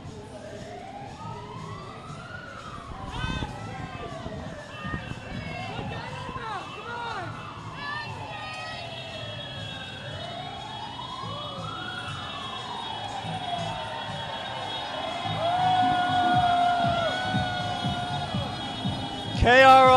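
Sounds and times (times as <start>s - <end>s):
anti-GMO protest crowd voices and commotion: 0.0s - 19.9s
emergency sirens wailing: 0.0s - 19.9s.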